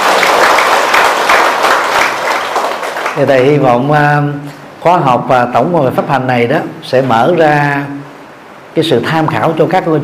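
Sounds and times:
crowd applauding: 0.0 - 3.2
speech: 3.2 - 8.0, 8.8 - 10.0.

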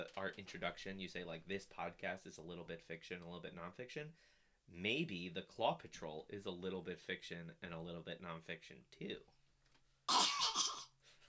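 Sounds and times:
speech: 0.0 - 9.4
quiet room noise: 0.0 - 11.2
rough raspy throat clearing: 10.1 - 10.9.

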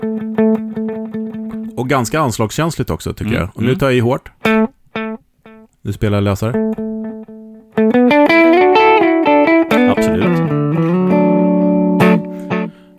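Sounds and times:
speech: 1.8 - 4.6, 5.8 - 6.8
distorted electric guitar through modulated 500-millisecond delay: 6.8 - 12.9.

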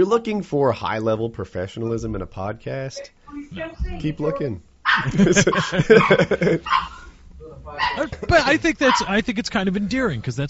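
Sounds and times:
speech: 0.0 - 7.0, 7.8 - 10.4
small dog yapping: 4.2 - 7.2, 7.8 - 8.1, 8.9 - 9.1
laughter: 5.0 - 6.9, 8.0 - 8.8.

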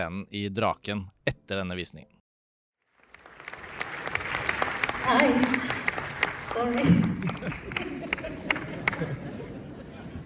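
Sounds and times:
speech: 0.0 - 2.2, 5.1 - 5.8, 6.5 - 9.3
polite audience applause: 2.8 - 9.5
laughter: 6.9 - 10.2.

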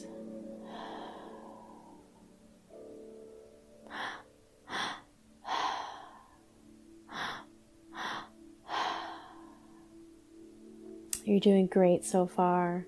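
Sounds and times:
slow deep breathwork of inhales and exhales: 0.2 - 2.9, 3.8 - 10.2
speech: 11.3 - 12.8.

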